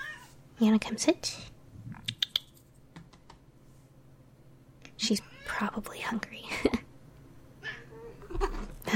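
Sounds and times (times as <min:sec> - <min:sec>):
speech: 0:00.6 - 0:01.5, 0:05.0 - 0:06.8, 0:08.4 - 0:08.9
cat giving a short high meow: 0:07.6 - 0:08.6.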